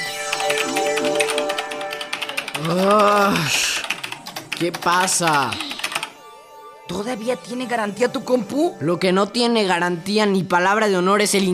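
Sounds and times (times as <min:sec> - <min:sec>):
typing on a computer keyboard: 0:00.3 - 0:06.1
speech: 0:02.7 - 0:03.7, 0:04.6 - 0:05.7, 0:06.9 - 0:11.5.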